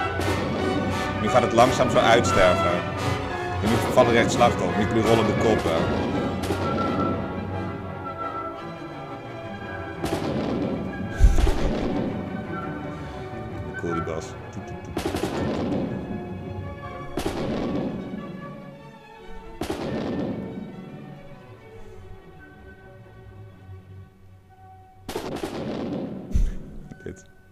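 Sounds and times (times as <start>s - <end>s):
gunshots from soldiers: 0.0s - 8.1s, 10.0s - 12.8s, 14.7s - 18.7s, 19.5s - 21.0s, 25.1s - 26.9s
low steady background: 0.0s - 27.4s
speech: 1.2s - 6.2s.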